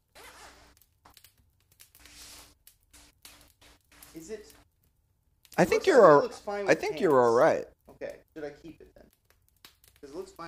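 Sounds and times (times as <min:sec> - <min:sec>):
windbreaker jacket zipper being zipped up: 0:00.1 - 0:00.7
speech: 0:04.2 - 0:04.6, 0:05.6 - 0:09.2, 0:10.0 - 0:10.4.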